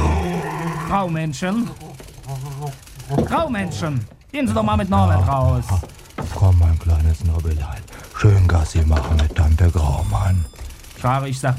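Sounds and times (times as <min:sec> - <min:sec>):
dog growling with whiny rising-and-falling tones: 0:00.0 - 0:01.0, 0:01.6 - 0:04.0
speech: 0:00.9 - 0:11.5.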